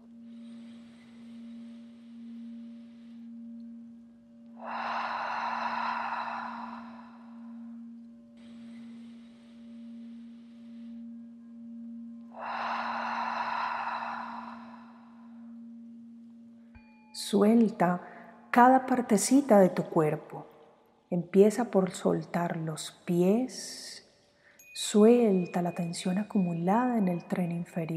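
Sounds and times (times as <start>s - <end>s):
deep inhaling and exhaling during a guided health meditation: 0.0s - 16.9s
steady low hum: 0.0s - 19.8s
speech: 17.3s - 20.5s, 21.1s - 24.0s, 24.8s - 27.9s.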